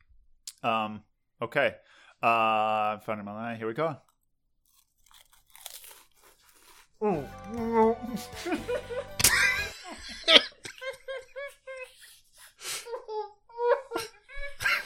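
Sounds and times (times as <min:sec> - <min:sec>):
speech: 0:00.6 - 0:04.1, 0:07.0 - 0:09.1
full-size club crackers being bitten and chewed: 0:04.0 - 0:09.6
laughter and giggling: 0:08.1 - 0:14.8.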